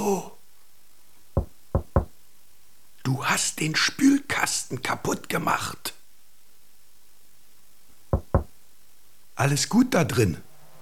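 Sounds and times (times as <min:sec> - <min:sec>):
speech: 0:00.1 - 0:00.4, 0:03.2 - 0:06.0, 0:09.4 - 0:10.5
gentle knocking on a refrigerator door: 0:01.4 - 0:02.1, 0:08.1 - 0:08.5.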